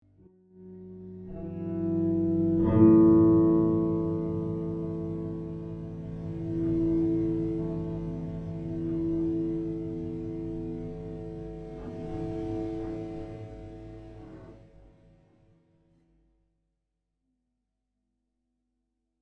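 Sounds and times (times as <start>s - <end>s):
guitar playing slowly: 0.1s - 15.2s.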